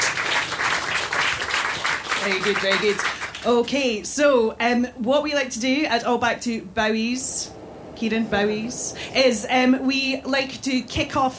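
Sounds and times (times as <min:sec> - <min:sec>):
audience applause: 0:00.0 - 0:03.5
speech: 0:02.2 - 0:11.3.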